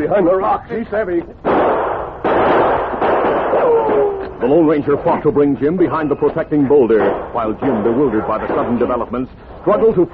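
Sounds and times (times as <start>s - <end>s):
speech: 0.1s - 2.7s, 3.6s - 10.1s
gunfire from outlaws in a radio drama: 1.4s - 4.6s, 6.9s - 9.1s.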